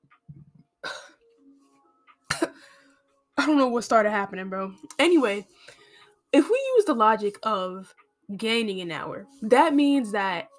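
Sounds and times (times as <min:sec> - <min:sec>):
person clearing something caught in their throat: 0:00.8 - 0:01.2
person coughing sharply: 0:00.8 - 0:01.2, 0:02.3 - 0:02.6
speech: 0:03.4 - 0:10.5.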